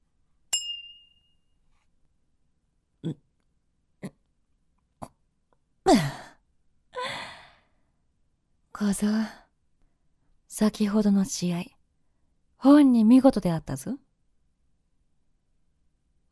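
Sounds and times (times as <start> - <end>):
glasses clinking in a toast: 0.6 - 1.2
speech: 3.0 - 3.2, 8.8 - 9.4, 10.6 - 11.8, 12.6 - 14.0.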